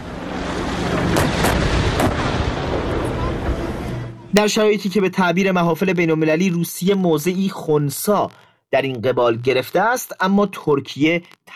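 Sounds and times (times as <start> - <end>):
heavy artillery fire: 0.0 - 4.2
steady wind-like noise: 0.0 - 4.6
constant rumbling din: 0.0 - 4.8
speech: 4.3 - 11.5.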